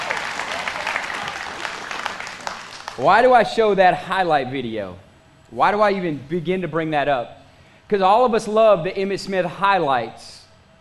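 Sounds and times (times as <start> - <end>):
audience clapping in a large room: 0.0 - 3.3
speech: 3.0 - 10.4.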